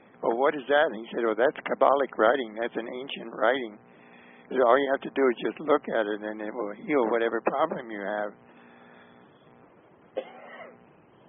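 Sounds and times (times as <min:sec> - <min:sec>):
speech: 0:00.2 - 0:03.9, 0:04.5 - 0:08.5
rough voiced trailing breath: 0:03.9 - 0:04.5
single short cough: 0:10.2 - 0:10.8.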